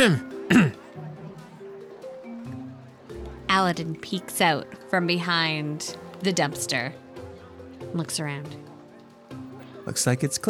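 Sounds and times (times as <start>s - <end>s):
speech: 0.0s - 0.7s, 3.6s - 7.0s, 7.9s - 8.7s, 9.8s - 10.4s
woman clearing her throat: 0.0s - 0.8s.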